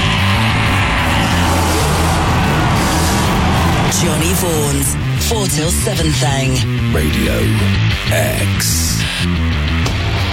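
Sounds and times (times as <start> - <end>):
car engine revving: 0.0 - 7.1
speech: 4.0 - 10.2.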